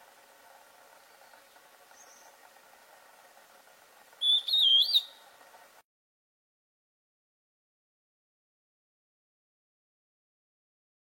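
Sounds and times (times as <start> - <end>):
quiet hiss: 0.0 - 5.8
antbird singing a single clear wavy whistle: 4.2 - 5.2.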